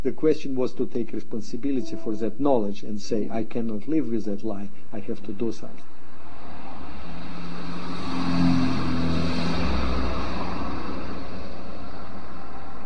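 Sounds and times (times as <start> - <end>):
speech: 0.0 - 6.0
vehicle passing with a louder, deeper growl: 6.0 - 12.8
city traffic engine rumble and tire noise in Moscow: 6.1 - 12.8.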